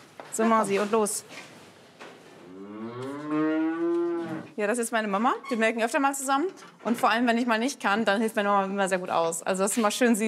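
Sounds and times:
speech: 0.3 - 1.6, 4.5 - 10.2
dairy cow mooing in a milking parlour: 2.5 - 4.6.

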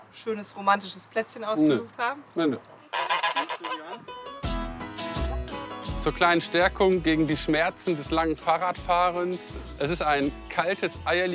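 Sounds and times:
speech: 0.1 - 3.0, 3.6 - 4.4, 6.0 - 11.3
gander and three female geese honking and chattering: 2.8 - 4.2.

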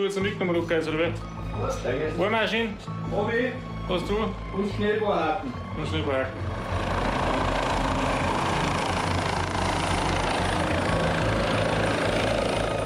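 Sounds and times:
speech: 0.0 - 6.9
helicopter flying overhead: 5.6 - 12.8.

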